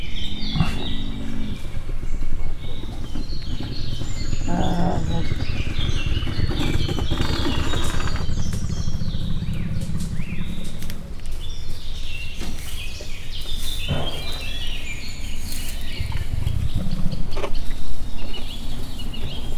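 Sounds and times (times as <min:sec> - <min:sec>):
Bactrian camel gurgling in Miskolc zoo: 0:00.1 - 0:12.3, 0:13.8 - 0:19.5.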